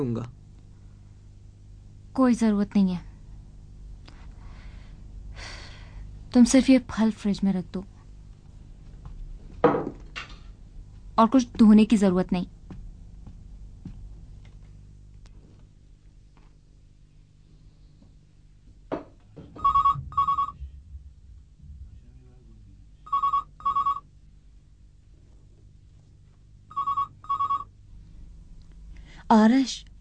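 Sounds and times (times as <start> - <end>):
speech: 0.0 - 0.4, 2.2 - 3.1, 6.3 - 7.9, 11.2 - 12.6, 29.7 - 29.9
faint low hum: 0.0 - 29.9
telephone ringing in a home with a high electronic trill: 19.6 - 20.6, 23.1 - 24.1, 26.7 - 27.7.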